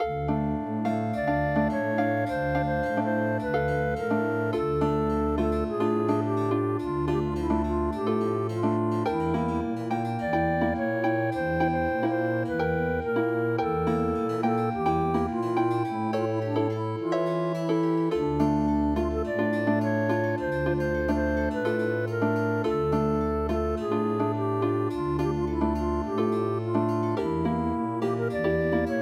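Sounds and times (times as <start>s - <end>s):
habanera flute music: 0.0s - 29.0s.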